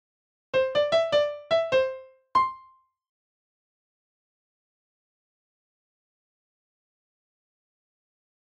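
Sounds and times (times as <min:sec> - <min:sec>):
dry piano: 0:00.6 - 0:02.8.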